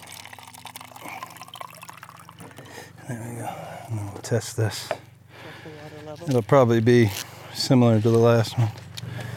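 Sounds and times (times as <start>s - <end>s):
water pouring from a barrel with splashing and gurgling: 0.0s - 2.7s
low hum: 0.0s - 9.3s
speech: 3.1s - 5.0s, 6.2s - 8.8s.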